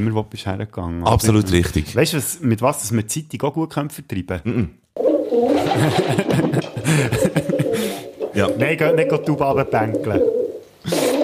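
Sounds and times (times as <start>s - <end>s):
speech: 0.0s - 11.0s
pigeons cooing: 5.0s - 11.2s
laughter: 5.6s - 8.0s.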